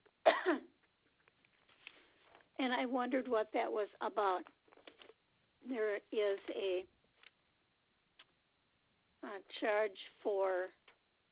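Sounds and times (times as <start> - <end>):
person coughing: 0.2 - 0.7
speech: 2.6 - 4.6, 5.6 - 7.0, 9.2 - 10.8.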